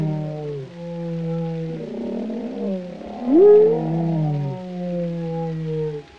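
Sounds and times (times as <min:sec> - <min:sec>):
whale song: 0:00.0 - 0:06.1.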